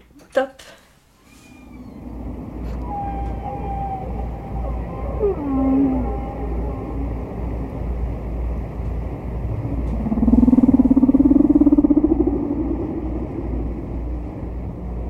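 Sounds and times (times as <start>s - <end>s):
humpback whale song from a vinyl record: 1.2s - 15.0s
low rumbling background: 1.4s - 15.0s.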